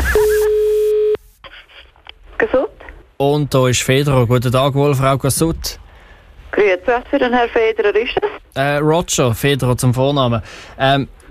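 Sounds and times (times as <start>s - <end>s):
steady telephone line tone on an incoming call: 0.0s - 1.2s
speech: 2.4s - 5.8s, 6.5s - 11.2s.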